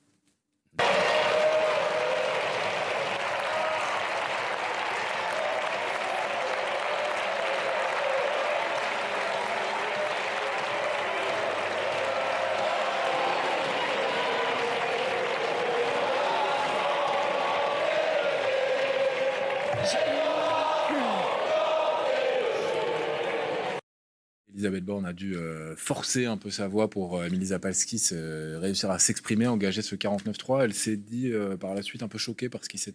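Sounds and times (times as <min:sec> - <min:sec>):
many voices shouting in uproar in a packed French parliament chamber: 0:00.8 - 0:23.8
speech: 0:24.6 - 0:32.9.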